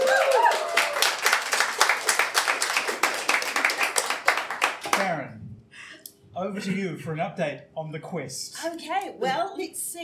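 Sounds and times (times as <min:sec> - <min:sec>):
small group clapping: 0:00.0 - 0:05.2
speech: 0:06.6 - 0:10.0.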